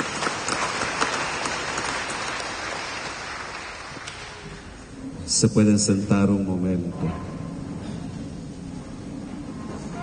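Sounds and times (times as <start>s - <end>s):
audience clapping in a room: 0.0s - 4.7s
speech: 5.4s - 7.3s.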